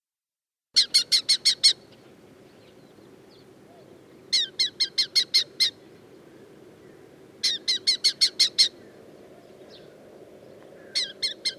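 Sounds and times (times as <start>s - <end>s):
red-footed falcon calling: 0.8s - 1.9s, 3.7s - 5.8s, 7.4s - 10.0s, 10.8s - 11.5s
steady low background noise: 0.8s - 11.5s.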